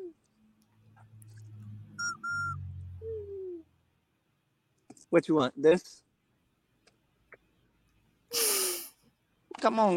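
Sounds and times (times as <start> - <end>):
shrill whistle toots: 2.0 - 2.7
speech: 5.1 - 6.0, 9.6 - 9.9.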